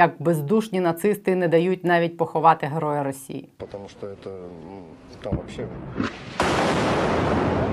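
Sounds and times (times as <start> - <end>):
speech: 0.0 - 7.7
incoming artillery shell explosion: 5.1 - 7.7.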